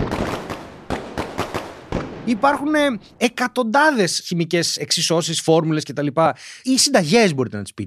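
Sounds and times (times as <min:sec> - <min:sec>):
fireworks exploding in sharp cracks: 0:00.0 - 0:03.4
speech: 0:02.3 - 0:07.8.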